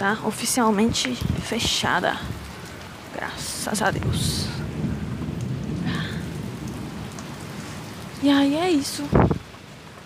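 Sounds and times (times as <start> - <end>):
speech: 0.0 - 2.4, 3.2 - 4.6, 8.2 - 9.3
steady dense rain pouring down: 0.0 - 10.0
deep rolling rumble of thunder: 2.2 - 9.9.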